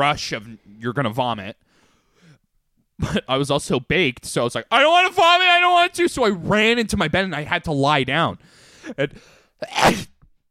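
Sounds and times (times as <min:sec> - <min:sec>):
speech: 0:00.0 - 0:01.6, 0:03.0 - 0:10.1
sneeze into a microphone: 0:09.6 - 0:10.3.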